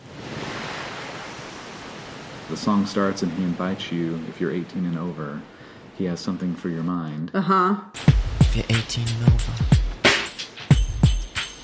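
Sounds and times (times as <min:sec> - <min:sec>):
ocean waves washing ashore: 0:00.0 - 0:06.6
speech: 0:02.5 - 0:09.8.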